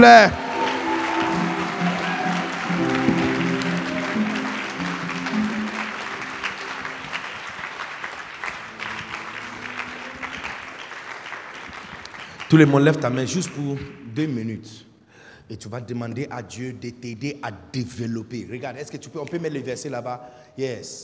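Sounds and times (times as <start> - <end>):
speech: 0.0 - 0.4, 12.5 - 14.9, 15.5 - 21.0
large crowd applauding: 0.0 - 14.1.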